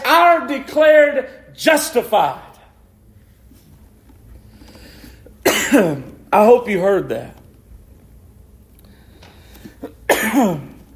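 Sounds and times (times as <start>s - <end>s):
speech: 0.6s - 2.5s, 5.7s - 7.4s, 9.8s - 10.7s
dry cough: 5.4s - 6.0s, 9.7s - 10.8s.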